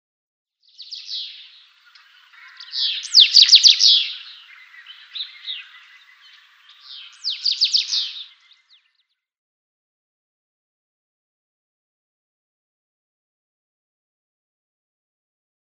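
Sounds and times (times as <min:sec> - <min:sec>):
house bunting singing: 0:00.9 - 0:08.9.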